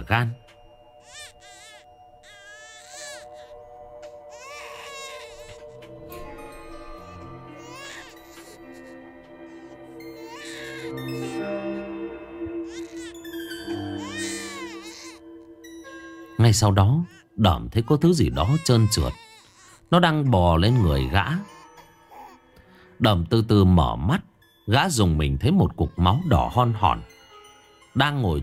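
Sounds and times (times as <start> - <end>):
speech: 0.1 - 0.5, 16.5 - 19.2, 19.9 - 21.5, 23.0 - 27.1, 28.0 - 28.4
baby crying shrilly at night: 1.0 - 3.6, 4.3 - 6.4, 7.0 - 8.8, 10.2 - 11.4, 12.6 - 13.2, 14.0 - 15.2, 17.8 - 19.8.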